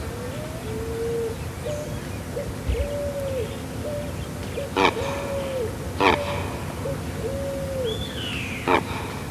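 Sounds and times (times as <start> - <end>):
Neotropic cormorant Phalacrocorax olivaceus calling: 0.2 - 9.1.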